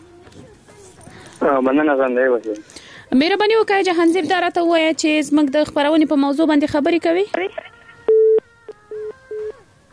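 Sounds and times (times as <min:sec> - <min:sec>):
speech: 0:01.4 - 0:07.7
telephone busy tone beeps after a dropped call: 0:08.1 - 0:09.6.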